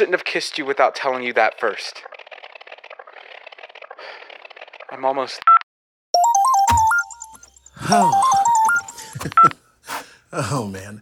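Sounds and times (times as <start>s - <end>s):
speech: 0.0s - 2.1s, 4.9s - 5.5s, 7.8s - 8.4s, 10.3s - 11.0s
mobile phone ringtone with bright stepped electronic melody: 6.2s - 9.2s.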